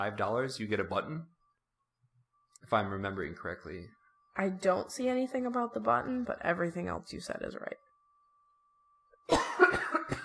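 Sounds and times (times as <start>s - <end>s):
speech: 0.0s - 1.4s, 2.6s - 7.8s
coughs made away from the microphone: 9.2s - 10.2s.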